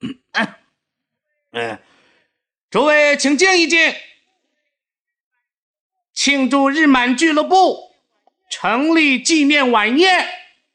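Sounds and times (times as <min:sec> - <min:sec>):
man clearing his throat: 0:00.0 - 0:00.7
speech: 0:01.6 - 0:01.8, 0:02.7 - 0:04.1, 0:06.2 - 0:07.9, 0:08.5 - 0:10.4.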